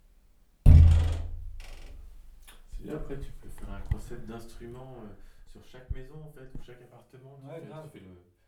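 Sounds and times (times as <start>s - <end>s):
squeaky kick drum: 0.7s - 2.5s.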